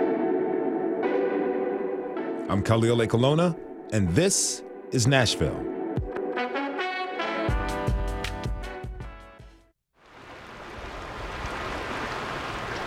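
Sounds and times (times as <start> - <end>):
brief musical passage: 0.0 - 9.8
speech: 2.5 - 5.8
gently flowing creek water: 10.0 - 12.8.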